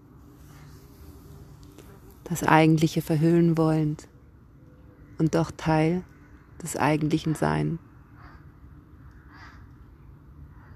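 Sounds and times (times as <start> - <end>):
low rumble: 0.0 - 10.7
speech: 2.3 - 4.1, 5.2 - 7.9
crows cawing while flying past: 7.3 - 9.8, 10.4 - 10.7.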